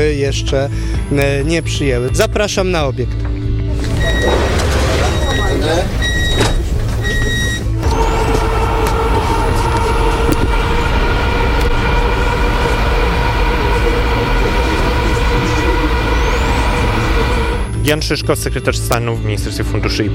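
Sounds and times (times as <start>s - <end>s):
speech: 0.1s - 3.3s, 17.9s - 20.1s
passenger train leaving station C03 Lazurowa rumbling on rails: 3.6s - 18.6s
faint voices murmuring: 3.8s - 18.0s
high tonal beeps: 3.8s - 18.1s.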